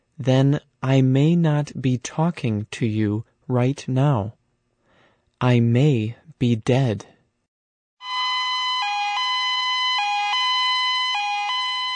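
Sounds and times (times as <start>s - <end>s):
speech: 0.2s - 4.4s, 5.4s - 7.1s
ambulance siren: 8.0s - 11.9s.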